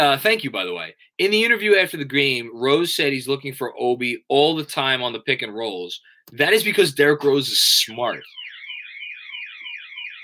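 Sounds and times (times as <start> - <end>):
speech: 0.0 - 8.4
house alarm warbling: 8.2 - 10.2.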